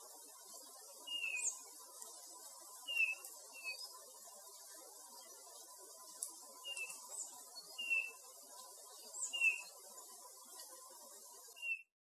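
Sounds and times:
steady hiss: 0:00.0 - 0:11.7
Eurasian bullfinch Pyrrhula pyrrhula giving soft descending piping calls: 0:01.1 - 0:01.6, 0:02.9 - 0:03.8, 0:07.8 - 0:08.1, 0:09.2 - 0:09.7.

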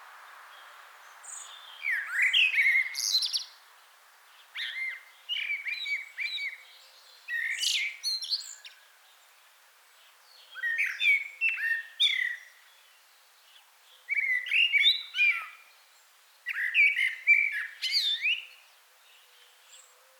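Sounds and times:
Common blackbird Turdus merula singing warbled phrases: 0:01.3 - 0:03.6, 0:04.4 - 0:08.9, 0:10.2 - 0:12.8, 0:14.0 - 0:15.8, 0:16.5 - 0:20.1.

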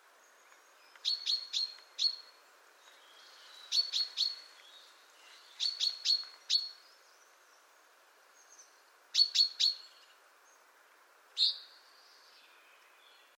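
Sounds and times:
faint background hiss: 0:00.0 - 0:13.3
common chaffinch Fringilla coelebs calls: 0:00.8 - 0:07.0, 0:08.4 - 0:10.2, 0:11.4 - 0:12.5.

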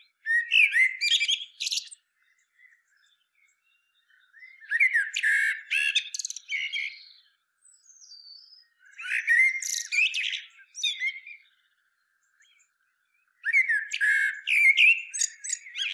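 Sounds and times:
Common blackbird Turdus merula fluty warbling song: 0:00.0 - 0:15.9.

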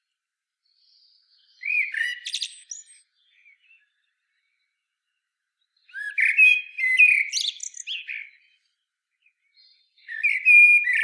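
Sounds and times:
common blackbird song: 0:00.0 - 0:11.0.

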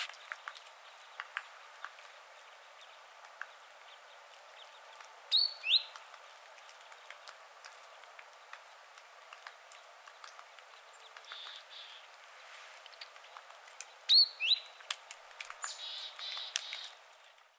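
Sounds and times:
steady background hiss: 0:00.0 - 0:17.5
great tit calls Parus major: 0:02.7 - 0:06.0, 0:10.9 - 0:12.1, 0:15.6 - 0:17.0.

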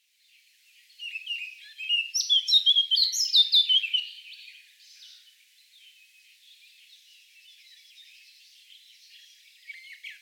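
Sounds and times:
Eurasian blackcap Sylvia atricapilla singing: 0:01.0 - 0:04.5.

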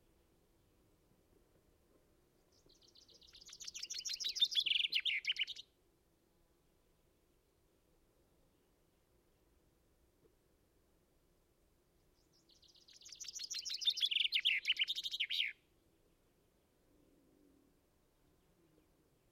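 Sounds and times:
Common chaffinch Fringilla coelebs singing descending trills: 0:02.5 - 0:05.6, 0:12.2 - 0:15.6.

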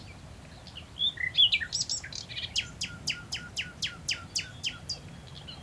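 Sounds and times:
common nightingale Luscinia megarhynchos singing: 0:01.1 - 0:05.6.

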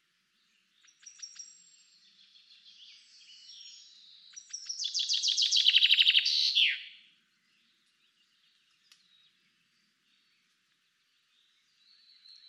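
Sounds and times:
Common chaffinch Fringilla coelebs song: 0:00.4 - 0:12.4.

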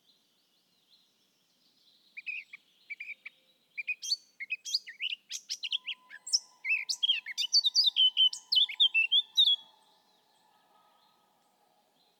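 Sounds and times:
Eurasian blackcap Sylvia atricapilla singing: 0:02.2 - 0:09.6
faint steady tone: 0:05.7 - 0:12.1.

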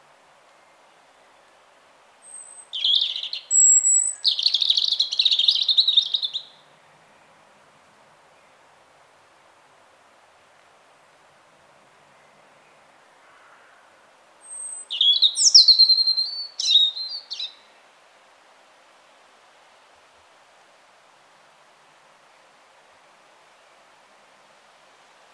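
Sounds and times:
European robin Erithacus rubecula singing: 0:02.2 - 0:06.7, 0:14.4 - 0:17.8.

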